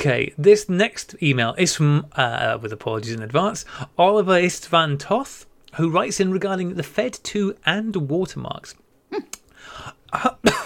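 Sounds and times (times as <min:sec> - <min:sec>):
speech: 0:00.0 - 0:10.6
person coughing: 0:10.2 - 0:10.6.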